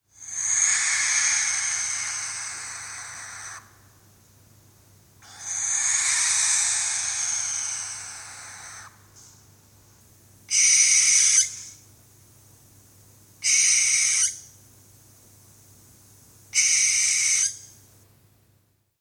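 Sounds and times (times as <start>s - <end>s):
barn owls calling: 0.2s - 3.8s, 5.2s - 9.1s, 10.5s - 11.8s, 13.4s - 14.5s, 16.6s - 17.8s.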